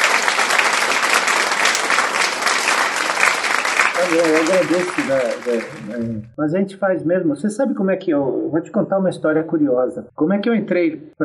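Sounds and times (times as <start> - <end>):
applause sound effect of many hands clapping: 0.0 - 6.4
laughter: 4.0 - 6.3
speech: 4.0 - 11.2.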